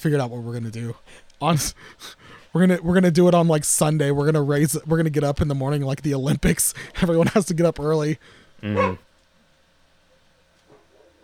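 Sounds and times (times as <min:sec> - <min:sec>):
speech: 0:00.0 - 0:09.1
pet dog barking: 0:08.8 - 0:09.0, 0:10.7 - 0:11.2.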